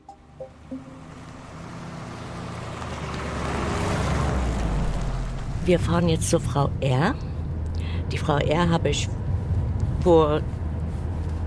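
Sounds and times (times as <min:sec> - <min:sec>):
faint tonal blips: 0:00.0 - 0:02.1
road noise inside a moving car: 0:00.0 - 0:11.4
speech: 0:05.7 - 0:07.3, 0:08.1 - 0:09.2, 0:10.0 - 0:10.6.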